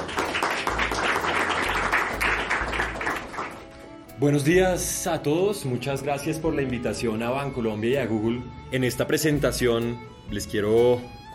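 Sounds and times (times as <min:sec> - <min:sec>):
audience applause welcoming a speaker: 0:00.0 - 0:04.0
speech: 0:04.2 - 0:11.3.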